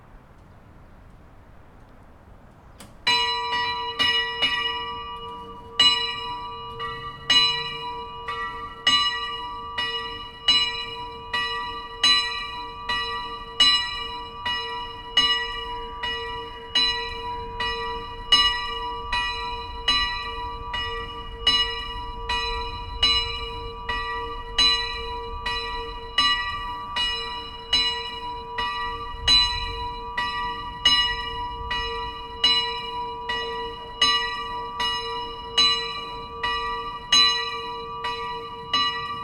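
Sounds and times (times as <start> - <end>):
church bell ringing: 3.0 - 39.2.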